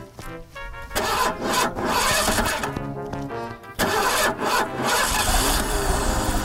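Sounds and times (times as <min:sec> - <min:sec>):
car engine starting: 0:00.9 - 0:02.9, 0:03.7 - 0:06.4.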